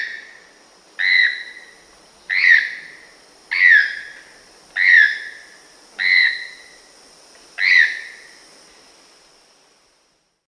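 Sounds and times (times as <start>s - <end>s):
quiet background hiss: 0.0s - 10.4s
Choco toucan calling with harsh, slightly descending yelps: 1.0s - 1.6s, 2.3s - 4.1s, 4.8s - 5.4s, 6.0s - 6.7s.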